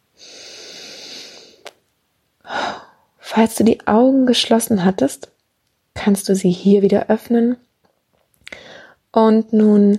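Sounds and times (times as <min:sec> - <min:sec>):
relaxed soft airy inhalation during a guided breathing exercise: 0:00.2 - 0:01.7, 0:08.5 - 0:09.0
speech: 0:03.4 - 0:05.3, 0:06.0 - 0:07.6, 0:09.2 - 0:09.9.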